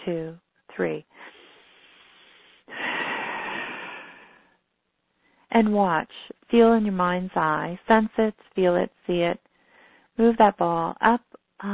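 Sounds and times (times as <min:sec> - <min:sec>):
speech: 0:00.0 - 0:01.3, 0:05.5 - 0:09.5, 0:10.2 - 0:11.7
group of people exhaling together: 0:01.2 - 0:04.4.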